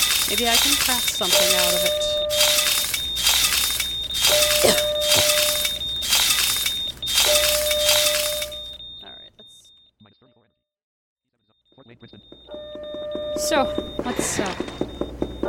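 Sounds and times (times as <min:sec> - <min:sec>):
glass shattering: 0:00.0 - 0:08.8
thin steady electronic beeping tone: 0:00.0 - 0:10.5, 0:11.5 - 0:15.4
speech: 0:00.3 - 0:02.6.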